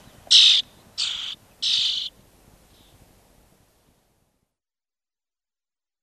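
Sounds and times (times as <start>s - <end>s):
European starling harsh buzzy calls: 0.3s - 2.1s.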